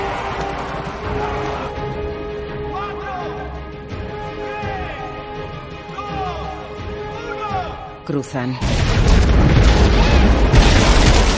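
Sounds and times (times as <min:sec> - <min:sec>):
speech: 0:08.1 - 0:10.5
bridge explosion in a zombie horror film: 0:08.6 - 0:11.3.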